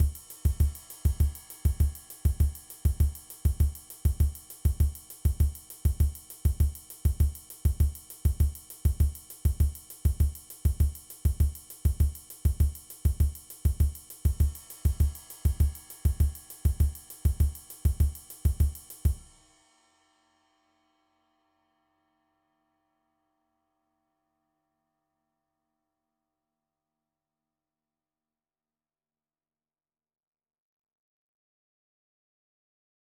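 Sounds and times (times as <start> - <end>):
samba beat: 0.0 - 19.3.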